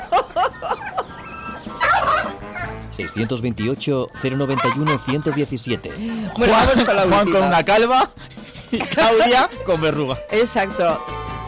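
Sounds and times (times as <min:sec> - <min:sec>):
laughter: 0:00.0 - 0:02.3, 0:04.2 - 0:10.5
hen clucking: 0:00.0 - 0:03.5, 0:04.2 - 0:06.5
hen squawking flurry: 0:00.6 - 0:03.4, 0:04.2 - 0:06.4
speech: 0:03.0 - 0:11.2.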